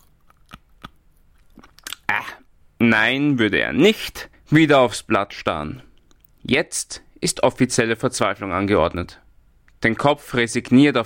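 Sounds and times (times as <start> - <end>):
person chewing and biting on a pen: 0.0 - 2.1
speech: 2.8 - 9.2, 9.8 - 11.0.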